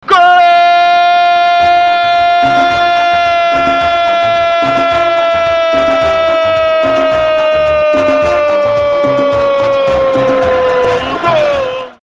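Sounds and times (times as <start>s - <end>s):
person shouting: 0.0s - 12.0s.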